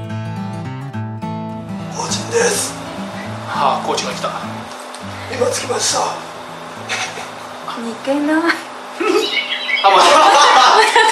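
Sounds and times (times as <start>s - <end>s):
speech: 2.0s - 2.8s, 3.6s - 4.6s, 5.3s - 7.0s, 7.8s - 8.6s, 9.8s - 10.4s
laughter: 5.2s - 6.0s, 6.8s - 7.4s, 8.4s - 11.0s
bird chirping and calling in bright tweets: 9.0s - 10.1s.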